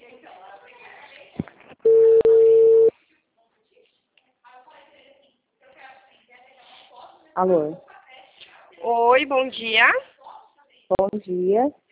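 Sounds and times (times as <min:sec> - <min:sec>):
telephone ringback tone of an outgoing call: 0:01.9 - 0:02.9
speech: 0:07.4 - 0:07.9, 0:09.2 - 0:10.0, 0:11.1 - 0:11.8.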